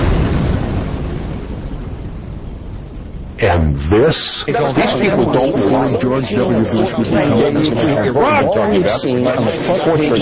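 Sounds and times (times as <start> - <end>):
car bomb exploding less than a block away: 0.0 - 4.2
speech: 3.4 - 10.2.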